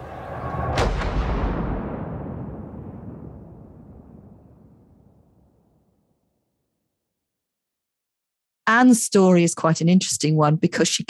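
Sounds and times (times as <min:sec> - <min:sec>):
cannon fire from castle walls: 0:00.0 - 0:06.4
speech: 0:08.7 - 0:11.0.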